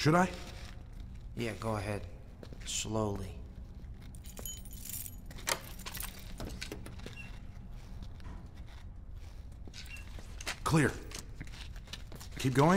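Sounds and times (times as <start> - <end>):
speech: 0.0 - 0.5, 1.4 - 3.4, 10.7 - 11.0, 12.4 - 12.7
keys jangling as they are taken from a door: 4.0 - 7.1.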